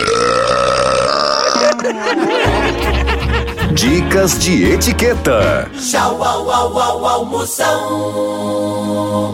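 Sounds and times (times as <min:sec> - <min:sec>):
long loud drawn-out burp: 0:00.0 - 0:01.9
laughter: 0:01.4 - 0:04.1
speech: 0:03.8 - 0:09.3.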